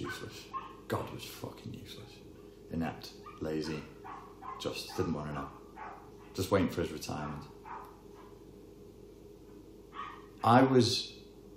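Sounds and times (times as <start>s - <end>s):
small dog giving a sharp high-pitched yap: 0.0s - 0.8s, 3.2s - 6.4s, 7.6s - 8.4s, 9.9s - 10.5s
quiet hum: 0.0s - 11.5s
speech: 4.6s - 5.6s, 6.4s - 7.6s, 10.4s - 11.2s.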